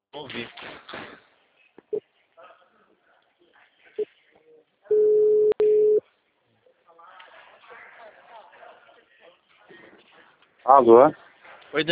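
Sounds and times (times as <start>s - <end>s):
faint voices: 0.1s - 5.1s, 6.0s - 11.9s
speech: 0.2s - 1.0s, 10.7s - 11.9s
telephone busy tone after a dropped call: 4.9s - 6.0s.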